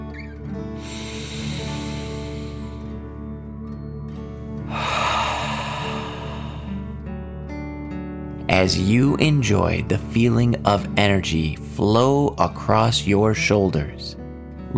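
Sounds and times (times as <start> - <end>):
deep dragon breath breathing in and out: 0.7 - 3.3, 4.5 - 7.3
speech: 8.6 - 14.7.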